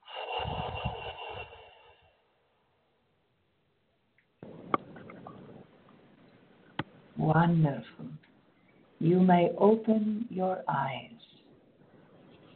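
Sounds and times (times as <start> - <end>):
big deep breath let out as a long breathy exhale: 0.0 - 2.3
speech: 7.2 - 8.2, 9.0 - 11.2.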